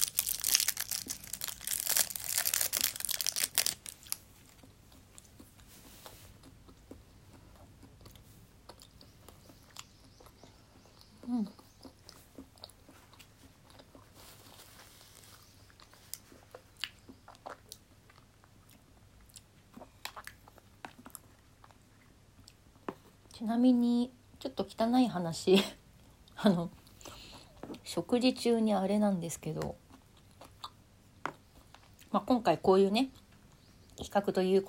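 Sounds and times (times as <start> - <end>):
biting and chewing a peach: 0.0 - 23.0, 29.4 - 32.2
speech: 23.4 - 25.8, 26.4 - 26.8, 28.0 - 29.8, 32.3 - 33.2, 34.1 - 34.6.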